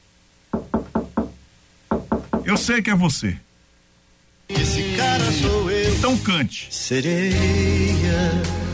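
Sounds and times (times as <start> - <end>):
knocking on a wooden door: 0.5 - 2.7
speech: 2.5 - 3.5, 4.8 - 8.6.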